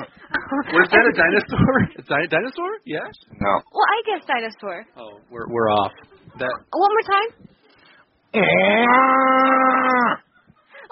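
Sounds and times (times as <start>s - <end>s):
speech: 0.5s - 7.5s, 8.3s - 10.2s
person imitating a black bear growl: 8.3s - 10.3s.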